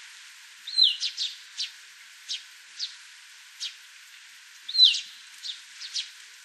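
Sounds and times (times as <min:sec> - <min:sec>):
russet sparrow calling: 0:00.7 - 0:01.7, 0:04.7 - 0:06.1.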